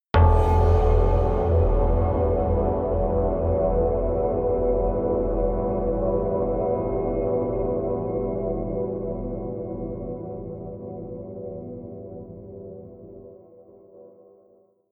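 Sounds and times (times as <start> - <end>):
synth hit: 0.2 - 4.2
synth drone atmosphere: 0.2 - 13.0.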